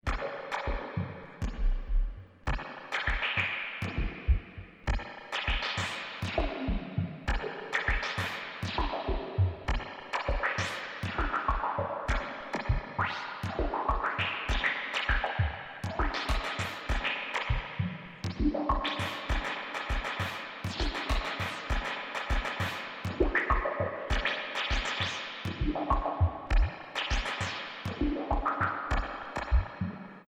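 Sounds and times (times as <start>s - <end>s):
Yamaha CS5 synthesizer with Drumtraks drum machine external in: 0.0s - 30.2s.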